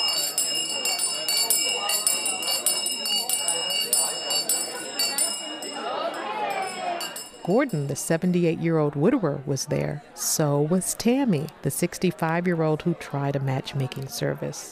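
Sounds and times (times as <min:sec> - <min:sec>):
bright bell ringing to signal a switch: 0:00.0 - 0:08.4
busy murmur of many people chatting at round tables: 0:00.0 - 0:14.7
speech: 0:07.4 - 0:14.7.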